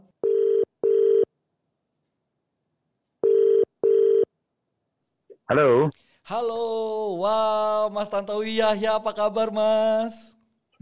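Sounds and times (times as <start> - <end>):
telephone ringback tone: 0.2 - 1.3, 3.2 - 4.3
speech: 5.5 - 10.8.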